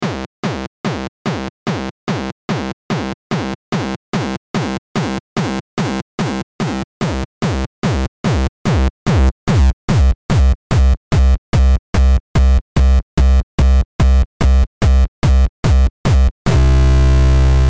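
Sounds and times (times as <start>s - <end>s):
kick drum: 0.0s - 16.6s.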